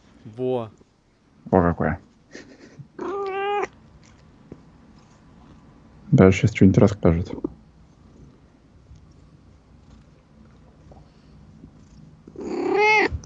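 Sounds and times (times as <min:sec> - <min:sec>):
speech: 0:00.2 - 0:00.8, 0:01.4 - 0:02.5, 0:06.1 - 0:07.6
cat meowing: 0:03.0 - 0:03.8, 0:12.3 - 0:13.2.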